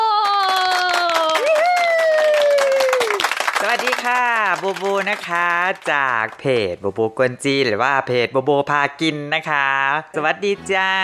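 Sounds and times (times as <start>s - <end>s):
audience applause welcoming a guest: 0.1s - 6.5s
speech: 3.7s - 11.0s.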